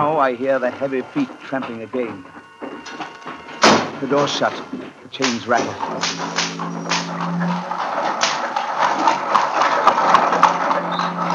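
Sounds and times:
speech: 0.0s - 3.0s, 4.0s - 7.5s
heavy horse-drawn cart wheels rolling down a rocky way: 0.0s - 11.3s
low hum: 0.0s - 11.3s
whips cracking: 5.2s - 7.1s.

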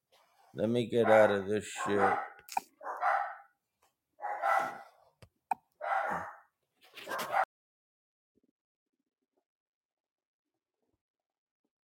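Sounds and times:
speech: 0.5s - 2.3s
dogs barking: 1.0s - 3.6s, 4.2s - 5.0s, 5.8s - 7.5s.

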